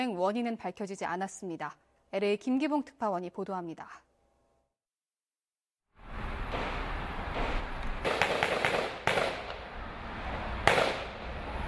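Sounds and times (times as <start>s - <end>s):
speech: 0.0s - 4.1s
gunshots during police shootout: 6.5s - 9.6s, 10.6s - 11.2s.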